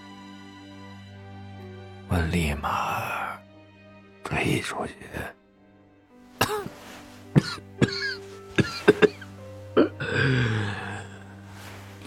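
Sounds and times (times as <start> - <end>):
speech: 2.1 - 3.1, 4.4 - 5.4
man coughing, short of breath: 6.4 - 6.8, 7.4 - 10.4.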